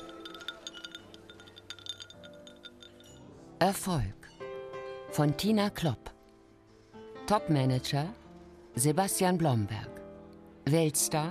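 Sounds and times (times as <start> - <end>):
several glasses clinking in a toast: 0.0 - 3.4
speech: 3.6 - 4.2, 5.2 - 6.1, 7.3 - 8.2, 8.8 - 9.9, 10.6 - 11.2.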